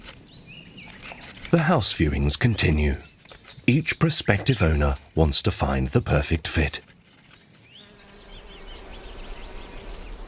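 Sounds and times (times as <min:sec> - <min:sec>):
speech: 0:01.5 - 0:03.1, 0:03.7 - 0:06.9
bees buzzing around a nest: 0:07.7 - 0:10.2.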